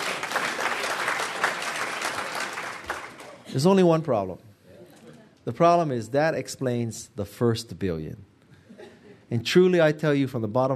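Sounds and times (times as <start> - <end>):
audience applause: 0.0 - 3.4
speech: 3.6 - 4.5, 5.5 - 8.3, 9.3 - 10.7.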